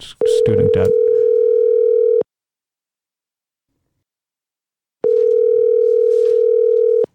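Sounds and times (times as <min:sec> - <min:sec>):
speech: 0:00.0 - 0:01.1
telephone ringing: 0:00.2 - 0:02.2, 0:05.0 - 0:07.1
dial tone: 0:00.9 - 0:02.3, 0:05.0 - 0:07.1.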